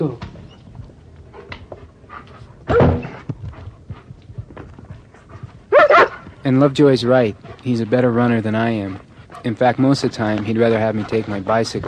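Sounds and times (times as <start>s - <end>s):
speech: 0.0s - 0.3s, 6.5s - 11.8s
light patter: 0.0s - 11.8s
German Shepherd dog barking: 5.7s - 6.2s.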